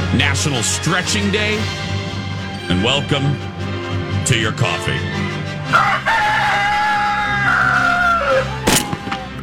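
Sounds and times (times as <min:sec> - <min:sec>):
speech: 0:00.1 - 0:01.9, 0:02.7 - 0:03.5, 0:04.3 - 0:06.1
rooster crowing: 0:05.7 - 0:09.3.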